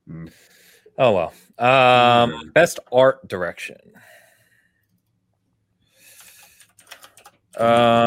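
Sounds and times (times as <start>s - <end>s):
speech: 0.2s - 4.2s, 7.6s - 8.0s
person speaking loudly: 1.6s - 2.7s, 7.6s - 8.0s
soft computer keyboard clicks: 6.2s - 7.9s.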